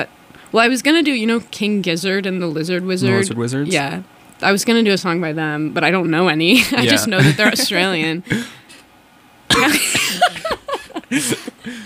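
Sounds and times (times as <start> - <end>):
speech: 0.0 - 8.6, 9.5 - 10.0, 11.1 - 11.8
laughter: 6.6 - 8.5, 9.6 - 11.8
person coughing with rough throaty hacks and wheezy catches: 6.8 - 7.6, 9.5 - 11.8.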